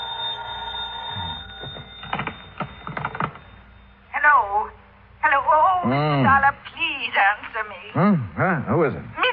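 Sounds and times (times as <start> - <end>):
telephone ringing with a buzzing tone: 0.0 - 4.3
speech: 5.8 - 9.2.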